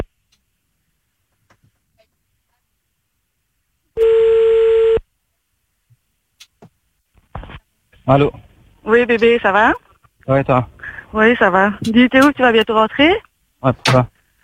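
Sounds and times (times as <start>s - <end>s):
telephone ringing tone of a call being placed: 4.0s - 5.0s
speech: 8.1s - 14.1s.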